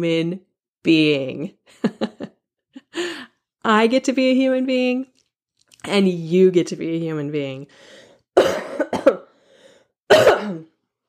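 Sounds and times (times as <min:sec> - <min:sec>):
speech: 0:00.0 - 0:02.3, 0:02.9 - 0:05.1, 0:05.8 - 0:09.2
person coughing: 0:08.4 - 0:09.4, 0:10.1 - 0:10.8.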